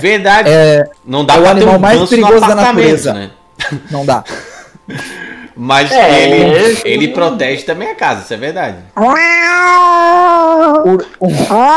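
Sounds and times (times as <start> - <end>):
speech: 0.0 - 11.7
laughter: 3.6 - 5.4
cat meowing: 9.0 - 10.9.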